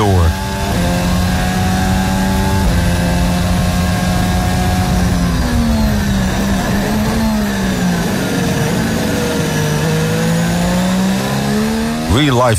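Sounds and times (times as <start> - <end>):
Formula 1 car engine shifting up gears heard onboard: 0.0 - 12.5
speech: 12.3 - 12.5.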